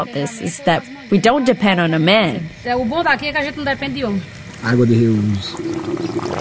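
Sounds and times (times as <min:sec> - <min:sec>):
speech: 0:00.0 - 0:06.4
grey water trickling out of black rubber hoses: 0:04.3 - 0:06.4.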